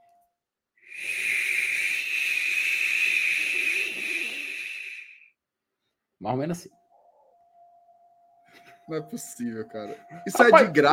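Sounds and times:
person hissing shhh imitating rain: 0:00.8 - 0:05.3
speech: 0:06.2 - 0:06.8, 0:08.9 - 0:10.9.

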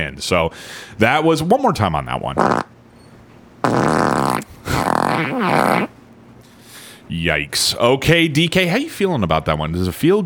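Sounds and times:
speech: 0:00.0 - 0:02.7, 0:05.2 - 0:06.0, 0:07.1 - 0:10.2
loud fart: 0:02.4 - 0:02.8, 0:03.6 - 0:06.0.

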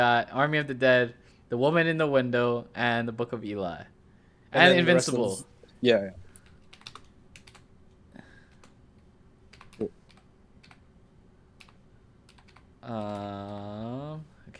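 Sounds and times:
speech: 0:00.0 - 0:06.2, 0:09.8 - 0:10.0, 0:12.8 - 0:14.5
computer keyboard typing: 0:06.4 - 0:07.7, 0:09.5 - 0:10.8, 0:11.6 - 0:13.7.

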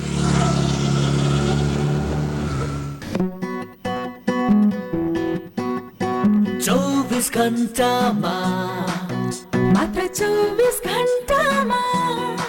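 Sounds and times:
dual-purpose motorcycle with 18.4 HP engine revving: 0:00.0 - 0:03.4
music: 0:01.6 - 0:12.4
speech: 0:06.6 - 0:09.0, 0:09.8 - 0:11.9.

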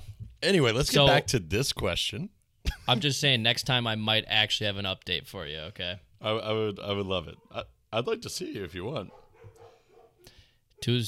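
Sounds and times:
speech: 0:00.4 - 0:09.2, 0:10.8 - 0:11.0
dog barking wildly: 0:09.1 - 0:10.3.

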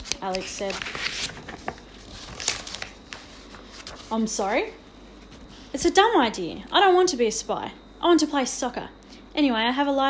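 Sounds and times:
twist of paper sweet wrapper crinkling as a woman unwraps a peppermint: 0:00.1 - 0:03.6
speech: 0:00.2 - 0:01.3, 0:04.1 - 0:04.8, 0:05.7 - 0:10.0.

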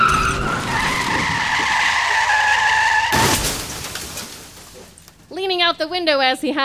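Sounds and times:
sedan tire squealing on a sharp corner: 0:00.0 - 0:04.1
sedan crashing into a blockade: 0:00.0 - 0:05.3
speech: 0:05.8 - 0:06.6.

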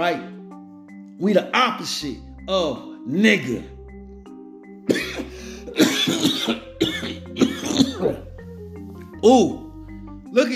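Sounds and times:
speech: 0:00.0 - 0:00.4, 0:01.2 - 0:03.8, 0:09.2 - 0:09.6, 0:10.3 - 0:10.5
person coughing in a harsh coughing fit: 0:04.9 - 0:08.2
throat-clearing: 0:04.9 - 0:08.2.

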